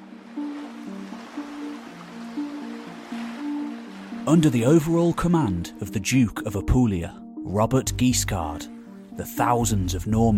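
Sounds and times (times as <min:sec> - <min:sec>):
gentle sea waves lapping: 0:00.0 - 0:05.8
low sustained musical tones: 0:00.0 - 0:10.3
speech: 0:04.2 - 0:10.3.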